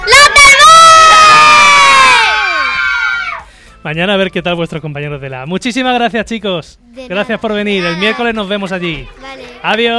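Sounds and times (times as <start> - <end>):
loud group of children shouting a high-pitched cheer in unison: 0.0 - 3.4
speech: 3.8 - 9.9.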